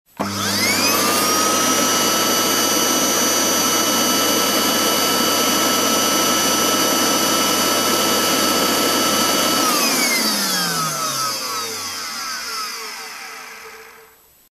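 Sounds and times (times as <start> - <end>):
vacuum cleaner: 0.1 - 14.5.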